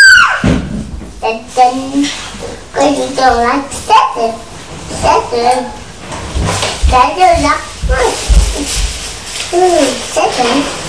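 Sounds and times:
child screaming: 0.0 - 0.5
rustling: 0.6 - 10.8
speech: 1.6 - 5.8, 6.9 - 8.2, 9.5 - 10.8.

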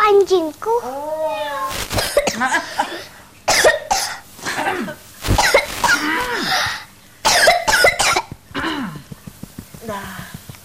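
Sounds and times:
speech: 0.2 - 1.2
harsh coughing: 2.0 - 9.0
rough throaty vocal sounds: 5.2 - 6.8.

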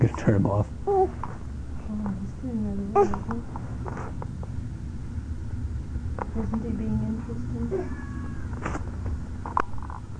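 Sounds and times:
speech: 0.0 - 1.2, 1.9 - 3.7, 6.4 - 8.8
low steady hum: 0.0 - 10.1
cat meowing: 7.7 - 8.6.

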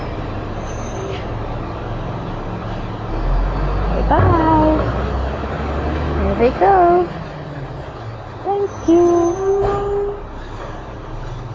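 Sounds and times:
big truck engine roaring as it pulls away: 0.0 - 11.5
speech: 4.1 - 4.6, 6.4 - 7.2, 8.8 - 9.6.

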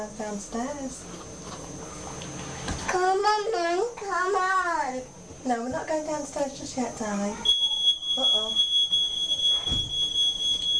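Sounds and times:
speech: 0.0 - 2.0, 2.9 - 7.6, 8.2 - 8.7
smoke alarm beeping in a home: 7.4 - 10.7.

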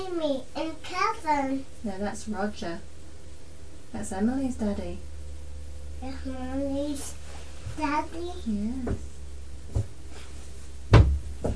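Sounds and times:
speech: 0.2 - 2.9, 3.9 - 5.1, 6.0 - 9.1, 9.7 - 9.9
door being kicked: 10.9 - 11.5.

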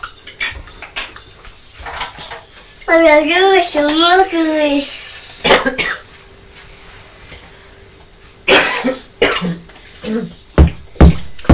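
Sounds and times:
speech: 2.9 - 5.0, 5.6 - 6.0, 10.1 - 10.4
young child coughing in imitation of mother's cough: 5.4 - 6.1, 8.5 - 10.4.

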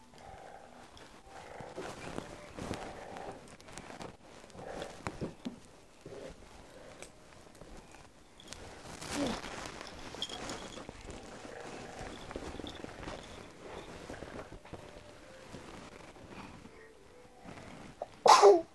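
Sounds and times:
shuffling footsteps: 0.2 - 18.7
household movement: 0.5 - 18.1
person sneezing: 18.2 - 18.7.

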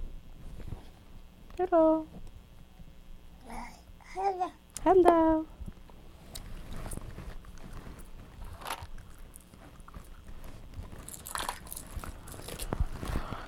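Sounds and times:
speech: 1.6 - 2.2, 3.5 - 5.5
child chewing ice cream cone: 5.8 - 13.4
child biting into an ice cream cone: 6.4 - 13.4.

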